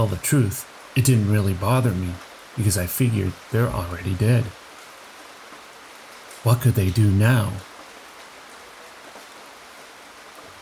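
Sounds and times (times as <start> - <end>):
speech: 0.0 - 4.6, 6.4 - 7.7
rain pouring down: 0.0 - 10.6.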